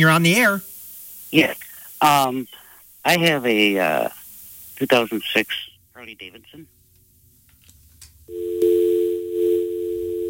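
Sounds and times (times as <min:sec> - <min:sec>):
speech: 0:00.0 - 0:00.7, 0:01.3 - 0:04.2, 0:04.8 - 0:06.8
faint noise: 0:00.0 - 0:10.2
telephone dial tone after a dropped call: 0:08.3 - 0:10.2.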